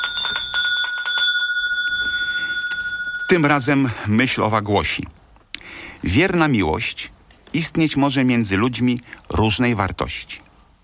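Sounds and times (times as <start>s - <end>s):
small bell ringing: 0.0s - 3.9s
speech: 3.3s - 5.2s, 6.0s - 10.4s.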